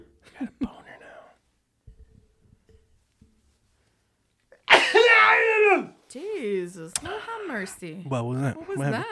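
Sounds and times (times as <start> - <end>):
loud sneeze: 4.6 - 6.0
long strongly voiced cry: 4.7 - 6.0
speech: 7.0 - 9.1.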